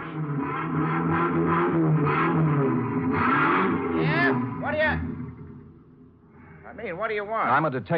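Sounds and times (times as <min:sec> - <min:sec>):
vehicle engine revving inside an echoing truck rental garage: 0:00.0 - 0:06.0
speech: 0:06.8 - 0:07.9.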